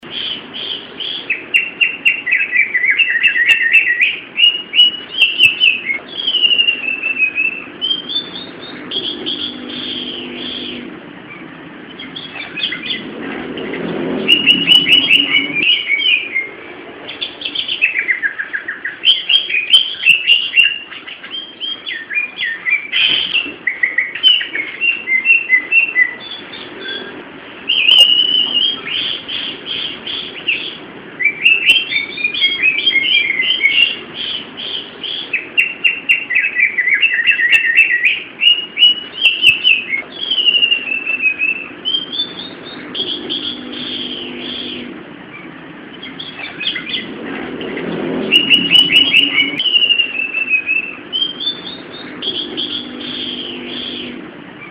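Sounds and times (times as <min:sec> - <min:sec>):
cucak hijau singing: 0:00.0 - 0:54.6.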